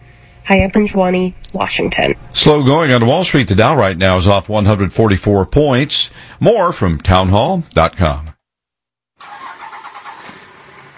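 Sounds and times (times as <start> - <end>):
speech: 0.5 - 8.4
diesel truck engine cranking and catching: 9.2 - 10.9.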